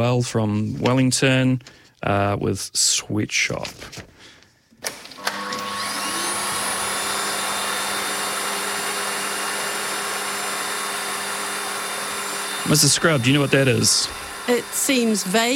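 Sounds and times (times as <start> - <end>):
speech: 0.0 - 4.1, 12.7 - 15.5
vacuum cleaner motor drone with a high whine: 4.9 - 15.5.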